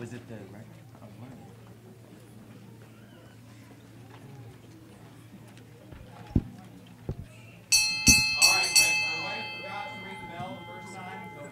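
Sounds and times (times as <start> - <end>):
faint voices: 0.0 - 11.5
bell rung to mark breaking the attendance record: 7.7 - 11.5.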